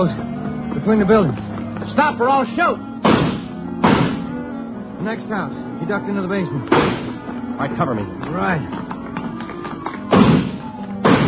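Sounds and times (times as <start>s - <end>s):
speech: 0.0s - 2.9s, 5.0s - 8.9s
heavy thuds of garage doors being broken through: 3.0s - 4.3s, 6.7s - 7.2s, 10.0s - 11.2s.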